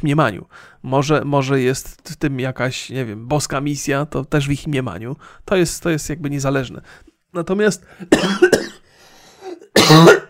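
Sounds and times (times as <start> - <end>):
speech: 0.0 - 8.6
faint breath: 0.5 - 0.8, 5.2 - 5.4, 6.8 - 7.2, 8.8 - 9.6
person coughing: 8.0 - 10.2.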